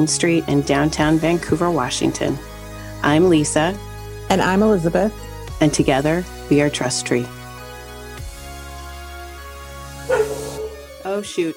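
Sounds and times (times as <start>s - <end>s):
speech: 0.0s - 7.4s, 11.2s - 11.5s
female dog barking: 10.1s - 11.1s.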